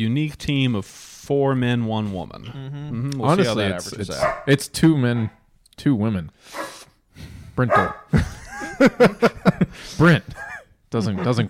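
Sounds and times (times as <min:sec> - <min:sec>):
speech: 0:00.0 - 0:11.4
dog barking: 0:04.2 - 0:05.4, 0:06.5 - 0:06.8, 0:07.7 - 0:08.1, 0:11.2 - 0:11.4
laughter: 0:08.1 - 0:10.7.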